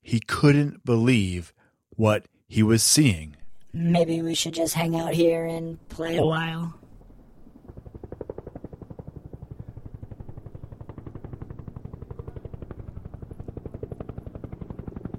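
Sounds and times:
speech: 0.1 - 6.8
helicopter rotor chopping: 3.8 - 15.1.

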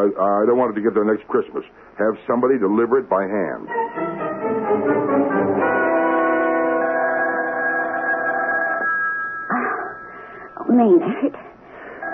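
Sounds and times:
speech: 0.0 - 4.0, 10.7 - 11.5
telephone ringing with a warbling trill: 5.3 - 11.2, 12.0 - 12.1.

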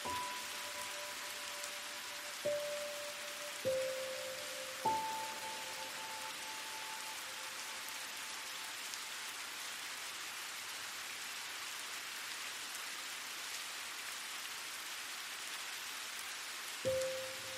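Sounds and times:
gentle struck notes: 0.0 - 8.7
soft rain: 0.0 - 17.5.

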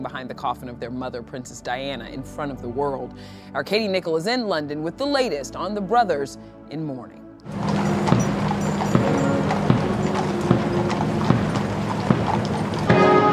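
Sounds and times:
speech: 0.0 - 7.7
horse hooves clip-clopping on pavement: 7.5 - 13.2.

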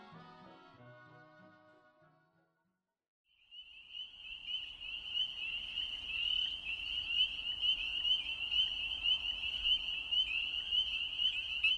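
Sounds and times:
spring peepers in a dense chorus: 3.4 - 11.7.

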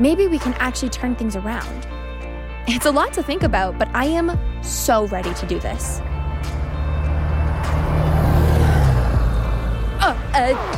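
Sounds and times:
speech: 0.0 - 2.0, 2.7 - 6.6, 10.4 - 10.7
bus driving past with deep engine drone: 5.2 - 10.7.

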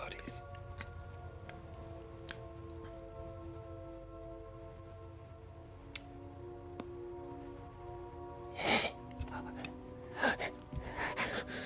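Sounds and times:
steady low electrical hum: 0.0 - 11.6
voice imitating creature with wet clicks and lip smacks: 2.2 - 2.8, 5.9 - 6.1.

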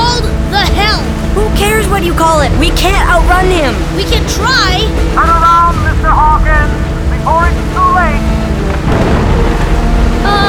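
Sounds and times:
rain in a sudden thunderstorm striking a boat at sea: 0.0 - 10.4
speech: 2.0 - 8.4
thunder in a sudden thunderstorm striking a boat at sea: 8.7 - 10.4.

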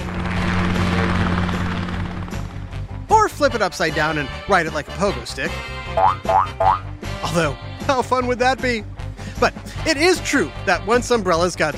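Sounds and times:
helicopter rotor blades whirring: 0.0 - 3.1
speech: 3.4 - 11.7.

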